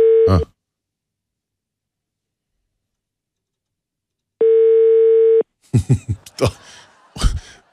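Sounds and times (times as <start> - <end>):
telephone ringback tone during outgoing call: 0.0 - 0.4, 4.4 - 5.4
speech: 0.3 - 0.5, 5.8 - 6.6
people laughing: 5.7 - 7.7.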